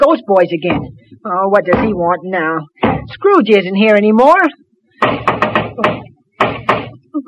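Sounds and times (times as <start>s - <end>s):
speech: 0.0s - 6.0s
loud knocking on a door: 2.8s - 3.1s, 5.0s - 7.0s.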